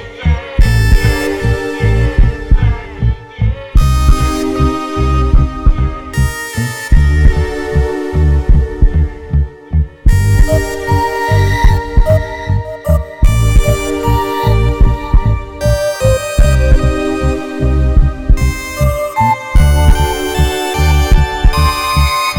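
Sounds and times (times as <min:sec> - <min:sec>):
full dense music: 0:00.0 - 0:22.3
deep heartbeat-like thumping: 0:00.3 - 0:01.3, 0:02.0 - 0:04.4, 0:05.2 - 0:06.3, 0:06.9 - 0:07.6, 0:08.4 - 0:12.6, 0:13.2 - 0:14.1, 0:14.7 - 0:15.8, 0:16.4 - 0:17.1, 0:17.9 - 0:19.0, 0:19.6 - 0:22.3.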